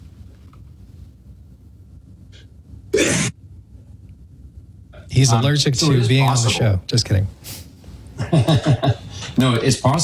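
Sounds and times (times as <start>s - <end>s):
person sneezing: 2.9s - 3.4s
speech: 5.2s - 7.6s, 8.3s - 10.0s
laughter: 8.2s - 9.8s.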